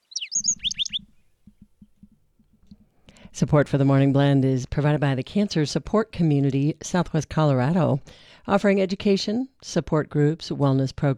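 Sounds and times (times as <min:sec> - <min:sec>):
black-throated sparrow singing high sweet chirping notes: 0:00.0 - 0:02.0
speech: 0:03.4 - 0:11.1.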